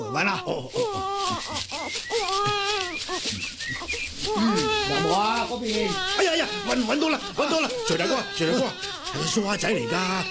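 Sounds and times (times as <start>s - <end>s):
baby crying in loud wavering wails: 0.0s - 3.3s, 4.2s - 10.3s
speech: 0.2s - 10.3s.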